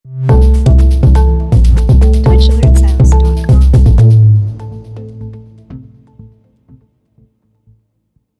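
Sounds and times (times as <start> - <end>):
trap cheer music: 0.6 - 4.3.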